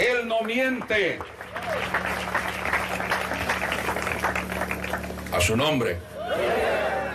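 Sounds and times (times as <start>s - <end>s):
speech: 0.0s - 2.4s, 5.3s - 6.7s
audience applause: 0.0s - 7.0s
low hum: 1.6s - 7.1s.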